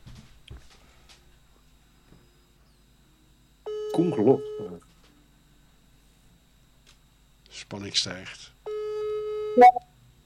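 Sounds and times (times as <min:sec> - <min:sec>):
telephone ringback tone: 0:03.7 - 0:04.8, 0:08.7 - 0:09.8
speech: 0:04.0 - 0:04.9, 0:07.7 - 0:08.6, 0:09.6 - 0:09.9.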